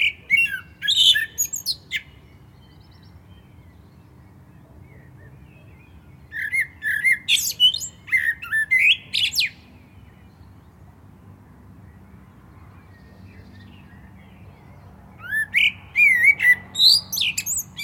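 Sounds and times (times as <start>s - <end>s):
Common blackbird Turdus merula singing: 0.0s - 10.8s, 11.9s - 17.8s.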